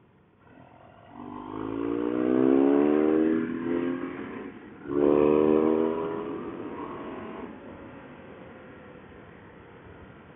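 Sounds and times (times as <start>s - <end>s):
road rumble: 0.0s - 10.3s
steady wind: 0.0s - 10.3s
powerful motorcycle engine revving while ridden on a road: 1.1s - 8.0s.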